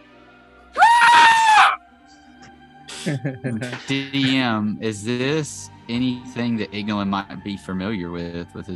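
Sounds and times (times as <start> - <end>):
loud ear-piercing creature shriek: 0.8 - 1.8
laughter: 2.9 - 4.6
speech: 3.0 - 8.7.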